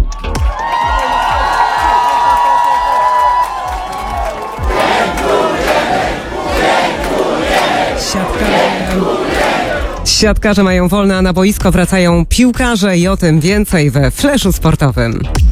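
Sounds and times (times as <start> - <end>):
large crowd of fans cheering and shouting at airport: 0.0 - 10.2
clapping: 0.2 - 10.1
steady roar of voices: 3.9 - 10.1
speech: 10.2 - 15.4.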